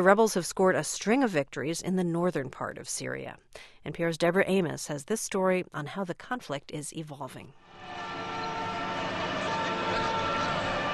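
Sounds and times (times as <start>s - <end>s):
speech: 0.0s - 8.2s
ambulance sirens racing through Damascus Syria: 7.7s - 10.9s
city traffic roar in Damascus Syria: 7.8s - 10.9s.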